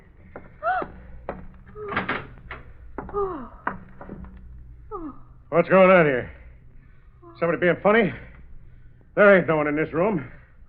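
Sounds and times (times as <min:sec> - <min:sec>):
room door swinging open with a long creak: 0:00.0 - 0:05.5
clicks and knocks from the door latch and hinges: 0:00.8 - 0:04.4
speech: 0:03.1 - 0:03.6, 0:05.0 - 0:06.4, 0:07.4 - 0:08.3, 0:09.2 - 0:10.4.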